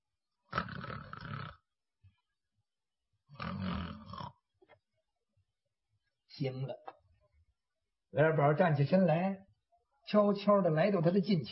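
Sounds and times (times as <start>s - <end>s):
voice imitating light snoring: 0.5s - 1.7s, 3.3s - 4.4s
speech: 6.4s - 6.9s, 8.1s - 9.5s, 10.1s - 11.4s.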